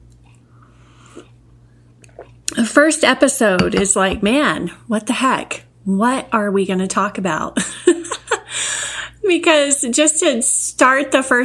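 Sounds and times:
low electrical hum: 0:00.0 - 0:11.4
speech: 0:01.2 - 0:01.4, 0:02.5 - 0:07.9, 0:09.3 - 0:11.4
person sipping tea: 0:02.0 - 0:02.4.

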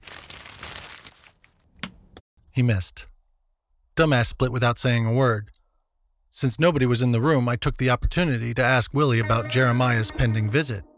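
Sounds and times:
paper message slip being crumpled up by hand: 0:00.0 - 0:01.7
speech: 0:02.6 - 0:03.1, 0:04.0 - 0:05.5, 0:06.3 - 0:10.9.

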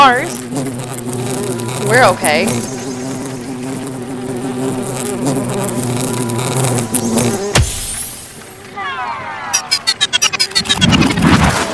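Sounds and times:
large bugs buzzing in loud droning whines: 0:00.0 - 0:08.7, 0:09.7 - 0:11.4
speech: 0:01.9 - 0:02.8
sharp crash: 0:07.4 - 0:08.6.

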